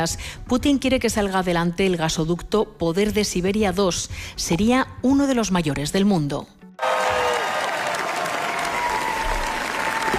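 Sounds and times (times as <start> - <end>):
speech: 0.0 - 6.6
large festival audience applause: 6.8 - 10.1
tonal whistles and cheers from the crowd: 6.8 - 10.1.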